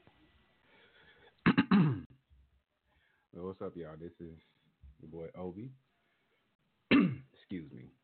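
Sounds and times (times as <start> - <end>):
person clearing throat: 1.4 - 2.1, 6.9 - 7.3
speech: 3.6 - 5.8, 7.5 - 8.0.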